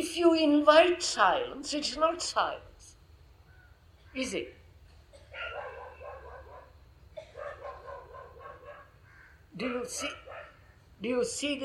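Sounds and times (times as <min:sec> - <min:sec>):
speech: 0:00.1 - 0:02.7, 0:04.2 - 0:04.6, 0:09.6 - 0:10.2, 0:11.0 - 0:11.6
dog barking and yelping: 0:05.3 - 0:09.0, 0:09.6 - 0:10.6.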